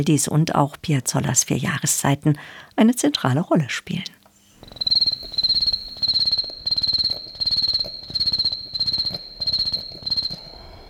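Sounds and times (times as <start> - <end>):
speech: 0.0 - 4.2
beatboxer's vocal imitation of autumn cicadas with mouth nose and throat: 4.6 - 10.4.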